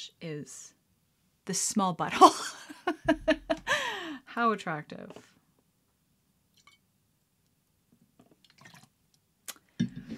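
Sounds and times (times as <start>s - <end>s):
speech: 0.0s - 0.8s, 1.5s - 5.4s
laughter: 2.2s - 3.9s
liquid pouring and dripping as a drink is poured: 6.5s - 6.8s, 8.2s - 9.0s.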